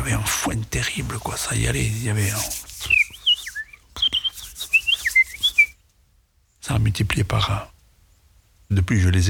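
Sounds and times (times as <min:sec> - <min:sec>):
speech: 0:00.0 - 0:02.7, 0:06.7 - 0:07.7, 0:08.7 - 0:09.2
person whistling an imitation of sparrows chirping in bamboo: 0:02.2 - 0:05.8.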